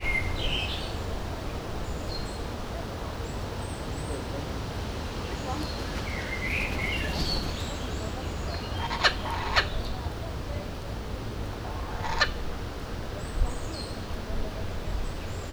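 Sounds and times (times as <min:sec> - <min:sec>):
very faint wind: 0:00.0 - 0:15.5.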